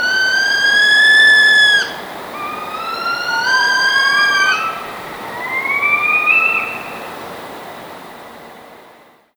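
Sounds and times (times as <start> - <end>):
northern saw-whet owl whines: 0.0 - 7.3
soft background hiss: 0.0 - 9.3.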